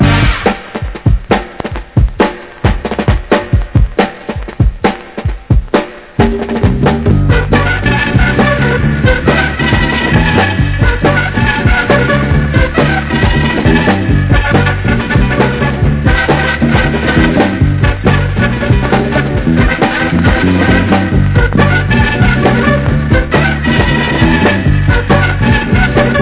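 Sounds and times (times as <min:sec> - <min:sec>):
upbeat soul music: 0:00.0 - 0:26.1.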